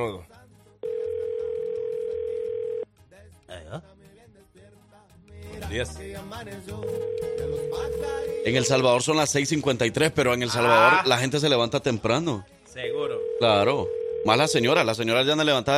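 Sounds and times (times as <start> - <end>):
speech: 0.0 - 0.4, 3.7 - 4.0, 5.7 - 15.7
telephone ringback tone while placing a call to El Salvador: 0.8 - 2.8, 6.8 - 8.7, 12.9 - 14.8.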